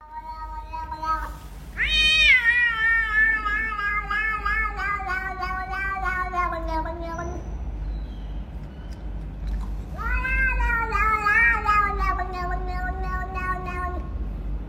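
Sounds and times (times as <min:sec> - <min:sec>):
cat meowing with a long wavering cry: 0:00.0 - 0:07.5, 0:09.9 - 0:14.1
low background hum: 0:00.0 - 0:14.6.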